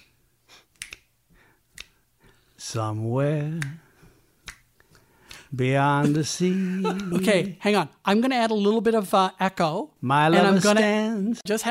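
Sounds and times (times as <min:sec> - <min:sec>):
fingers snapping: 0:00.0 - 0:01.1, 0:01.7 - 0:02.0, 0:03.4 - 0:03.8, 0:04.4 - 0:05.5
speech: 0:02.6 - 0:03.8, 0:05.5 - 0:11.6.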